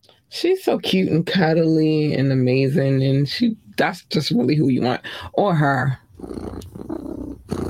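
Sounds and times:
speech: 0.4 - 6.9
big cat purring: 6.1 - 7.6.

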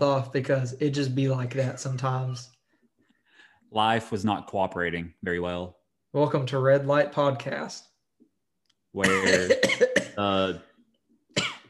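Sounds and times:
speech: 0.0 - 2.6, 3.7 - 7.9, 8.9 - 10.7
person coughing: 9.0 - 10.4, 11.3 - 11.6.

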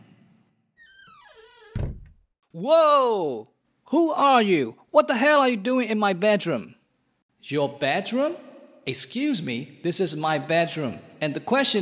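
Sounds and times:
bedroom door creaking open with a long squeal: 0.8 - 2.3
door thud: 1.4 - 2.2
speech: 2.6 - 6.8, 7.4 - 11.8.

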